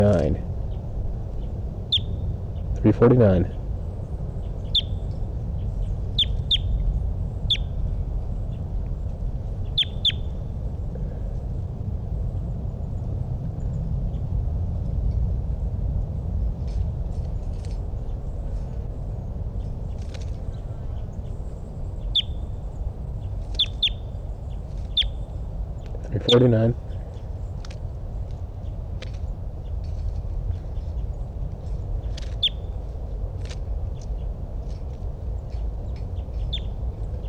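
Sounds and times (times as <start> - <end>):
steady low hum: 0.0 - 37.2
speech: 0.1 - 0.5, 2.8 - 3.6, 26.4 - 26.8
high-pitched bird calls: 4.7 - 5.0, 6.2 - 6.8, 7.5 - 7.7, 9.8 - 10.2, 22.1 - 22.4, 23.5 - 24.0.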